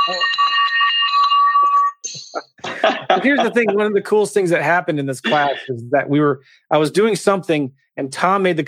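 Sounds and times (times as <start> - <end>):
victory bell ringing: 0.0 - 1.9
speech: 0.1 - 0.4, 3.2 - 8.6
laughter: 2.1 - 4.2, 5.2 - 5.7.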